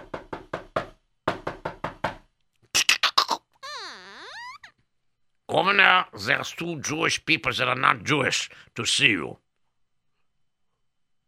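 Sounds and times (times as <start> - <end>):
sharp knocking on a door: 0.0 - 2.3
brief high squeaks: 3.6 - 4.8
speech: 5.6 - 9.4.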